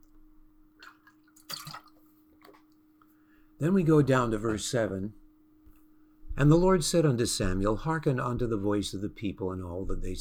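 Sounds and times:
faint steady hum: 0:00.0 - 0:10.1
sipping and swallowing water: 0:00.8 - 0:02.8
speech: 0:03.6 - 0:05.2, 0:06.4 - 0:10.1.

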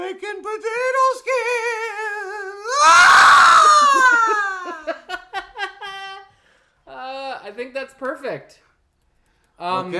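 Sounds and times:
speech: 0:00.2 - 0:01.0, 0:07.8 - 0:08.7, 0:09.6 - 0:09.9
loud high-pitched scream of terror: 0:02.6 - 0:04.9.

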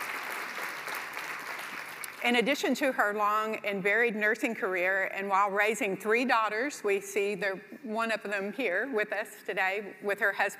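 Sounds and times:
crowd applauding: 0:00.0 - 0:02.2
speech: 0:02.2 - 0:10.5.

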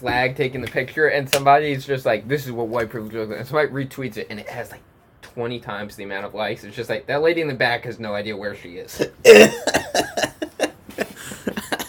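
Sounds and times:
speech: 0:00.0 - 0:09.8
person coughing and laughing: 0:09.0 - 0:11.8.

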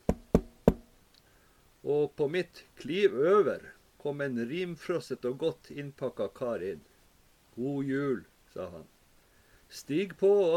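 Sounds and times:
firm knocking on a wooden door: 0:00.0 - 0:00.9
speech: 0:01.9 - 0:06.9, 0:07.6 - 0:08.9, 0:09.7 - 0:10.5.

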